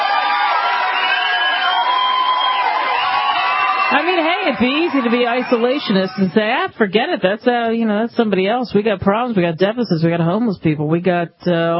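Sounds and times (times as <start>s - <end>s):
whoops and shouts from a crowd: 0.0s - 6.0s
large crowd cheering and applauding: 0.0s - 6.4s
speech: 3.9s - 11.7s.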